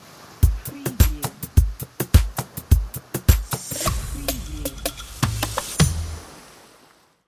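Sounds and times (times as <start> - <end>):
pop drum loop in six-eight time: 0.4 - 6.2.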